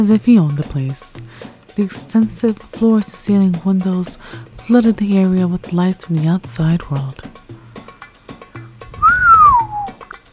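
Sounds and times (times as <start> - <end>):
speech: 0.0 - 1.2, 1.8 - 7.4
man whistling: 9.0 - 10.0.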